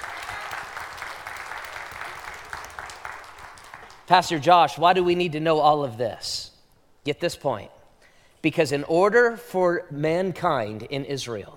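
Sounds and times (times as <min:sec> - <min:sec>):
audience applause: 0:00.0 - 0:04.2
sharp claps: 0:00.0 - 0:04.4
speech: 0:04.1 - 0:06.5, 0:07.1 - 0:07.8, 0:08.4 - 0:11.5.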